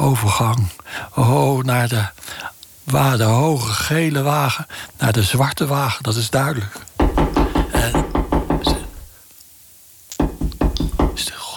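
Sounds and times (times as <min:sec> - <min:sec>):
speech: 0:00.0 - 0:08.0
loud knocking: 0:07.0 - 0:09.1, 0:10.2 - 0:11.3.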